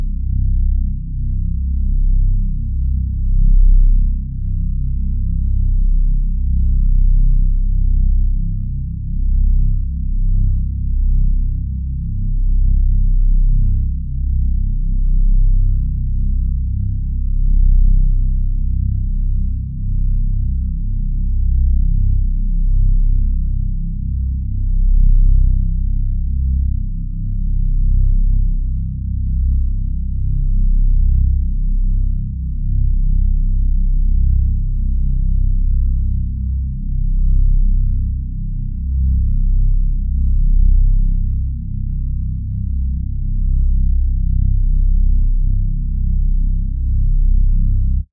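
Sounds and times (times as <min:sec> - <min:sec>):
detuned synth bass: 0:00.0 - 0:48.1.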